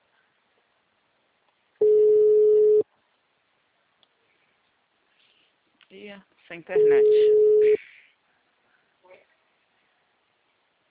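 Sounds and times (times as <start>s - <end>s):
telephone call tone while a number is dialed: 1.8s - 2.8s, 6.8s - 7.8s
speech: 6.1s - 7.8s.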